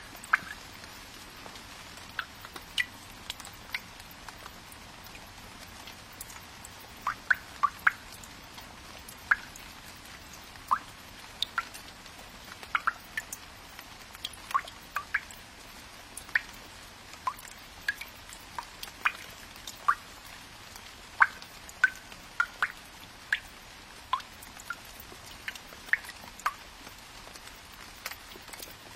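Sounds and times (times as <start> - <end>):
quiet steady low hiss: 0.0 - 28.9
raindrops falling into a water vat: 0.0 - 28.9.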